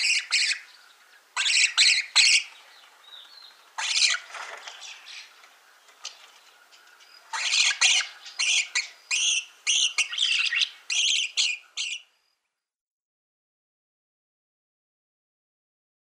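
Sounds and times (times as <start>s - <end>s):
rosy starling rasping broadband squawks: 0.0s - 2.6s, 3.7s - 5.4s, 6.5s - 12.1s
faint softer rosy starling notes: 0.0s - 12.8s.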